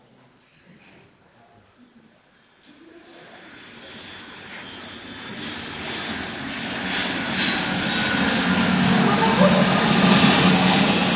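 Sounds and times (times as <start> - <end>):
airplane engine roar during takeoff climb heard from inside the cabin: 3.0 - 11.1.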